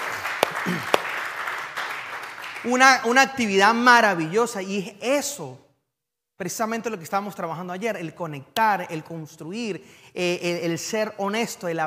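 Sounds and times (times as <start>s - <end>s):
crowd applauding: 0.0s - 3.1s
sharper louder claps: 0.0s - 3.1s
speech: 0.6s - 1.0s, 2.6s - 5.6s, 6.4s - 11.8s.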